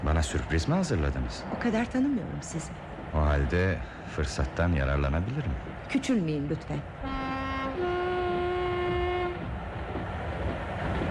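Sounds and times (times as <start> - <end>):
train speeding up on rails after a tunnel: 0.0 - 11.0
speech: 0.1 - 7.2
train horn two-tone blast: 7.0 - 9.6.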